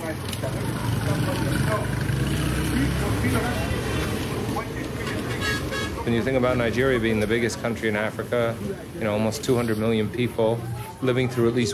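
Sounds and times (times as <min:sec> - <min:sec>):
crowd of indistinct voices murmuring on busy city street: 0:00.0 - 0:11.7
engines rumbling in busy city street traffic: 0:00.0 - 0:11.7
speech: 0:06.1 - 0:11.7.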